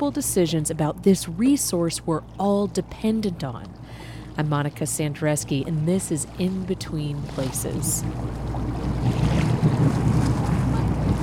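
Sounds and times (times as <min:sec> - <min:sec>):
speech: 0:00.0 - 0:09.8
boat engine rumble on a lake: 0:00.0 - 0:11.2
waves splashing along a boat hull on a lake: 0:00.0 - 0:11.2
gusting wind buffeting the microphone: 0:07.2 - 0:11.2.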